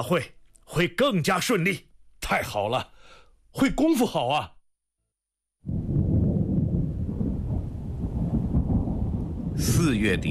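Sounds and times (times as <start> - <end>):
speech: 0.0 - 4.6, 9.6 - 10.2
distant rolling thunder: 5.6 - 10.2.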